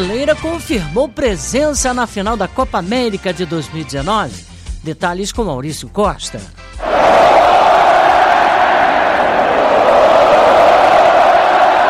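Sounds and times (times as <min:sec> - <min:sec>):
speech: 0:00.0 - 0:07.2
stadium crowd chanting ole: 0:06.8 - 0:11.8.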